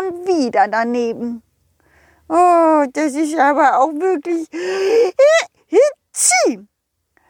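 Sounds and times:
speech: 0:00.0 - 0:01.4, 0:02.3 - 0:06.7
voice acting out a snowman's sneeze: 0:06.2 - 0:06.6.

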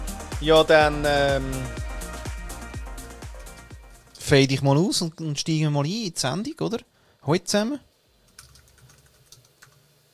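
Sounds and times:
speech: 0:00.4 - 0:01.8, 0:04.2 - 0:07.9
low hum: 0:04.1 - 0:10.1
typing on a computer keyboard: 0:08.3 - 0:09.8.

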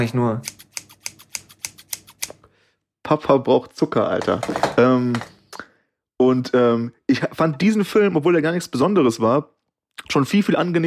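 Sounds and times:
speech: 0:00.0 - 0:00.6, 0:03.1 - 0:05.3, 0:06.2 - 0:10.8
scissors snipping: 0:00.4 - 0:02.4.

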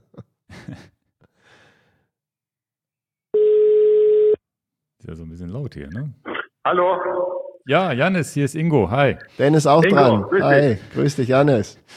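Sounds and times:
telephone line tone on a call to Spain: 0:03.4 - 0:04.4
speech: 0:05.1 - 0:11.9.

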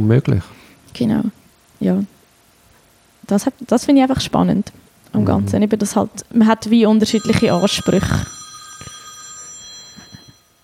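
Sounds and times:
speech: 0:00.0 - 0:02.1, 0:03.2 - 0:08.9
telephone ringing with a high electronic trill: 0:07.0 - 0:10.6.

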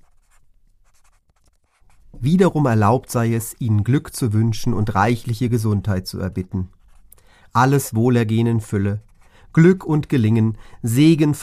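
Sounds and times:
pen or pencil scratching on notebook paper: 0:00.0 - 0:03.1, 0:06.7 - 0:07.1, 0:08.3 - 0:09.4
speech: 0:02.2 - 0:06.8, 0:07.5 - 0:11.4.

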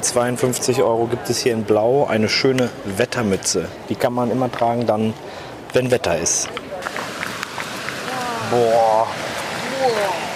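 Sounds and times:
speech: 0:00.0 - 0:06.6, 0:08.5 - 0:10.3
rushing water from a small waterfall: 0:06.2 - 0:10.3.

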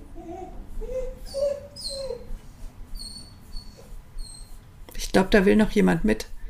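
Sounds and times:
dog whimpering and whining: 0:00.0 - 0:04.6
speech: 0:05.2 - 0:06.3.

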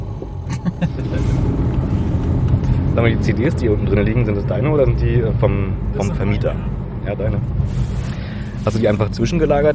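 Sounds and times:
car engine rumble heard from inside the cabin: 0:00.0 - 0:09.7
speech: 0:03.0 - 0:08.0, 0:08.6 - 0:09.7.

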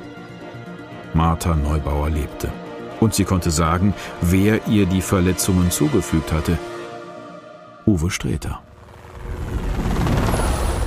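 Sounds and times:
speech: 0:01.2 - 0:06.8, 0:07.9 - 0:08.7
helicopter rotor chop on a flight over Helgoland: 0:08.6 - 0:10.8.

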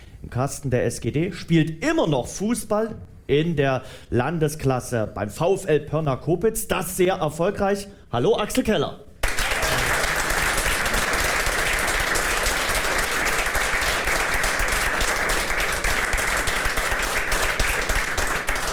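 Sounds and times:
speech: 0:00.3 - 0:09.1
audience applause: 0:09.2 - 0:18.7.

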